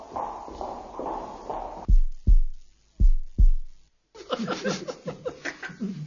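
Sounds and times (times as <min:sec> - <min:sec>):
deep heartbeat thumping: 0:00.0 - 0:03.9
burst of laughter: 0:04.2 - 0:06.0.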